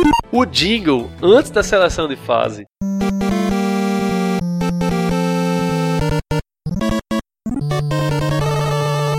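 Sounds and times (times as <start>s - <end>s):
chiptune sound effects from an 8-bit video game: 0.0s - 0.3s, 2.8s - 9.1s
speech: 0.4s - 3.2s.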